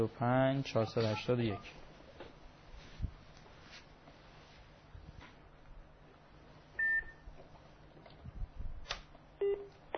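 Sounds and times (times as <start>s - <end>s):
speech: 0.0s - 1.8s
electronic telephone beep: 6.8s - 7.2s.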